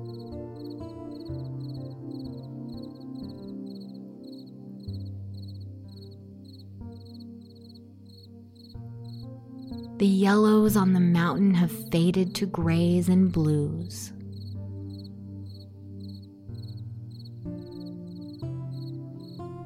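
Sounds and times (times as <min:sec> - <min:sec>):
crickets chirping at dusk: 0:00.0 - 0:10.0, 0:14.2 - 0:19.6
speech: 0:10.0 - 0:14.2.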